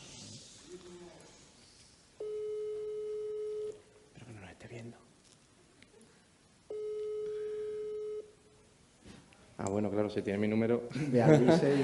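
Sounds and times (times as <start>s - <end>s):
unanswered phone call ringback tone: 2.2s - 3.8s, 6.7s - 8.3s
speech: 9.7s - 11.8s
laughter: 10.9s - 11.8s.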